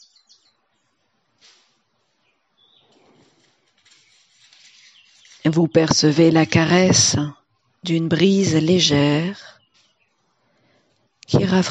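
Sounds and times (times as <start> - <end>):
bird song with chirps and tweets: 0.0 - 1.0, 2.0 - 6.0, 7.6 - 10.4
soft steady outdoor ambience: 0.0 - 11.7
speech: 5.5 - 9.6, 11.3 - 11.7.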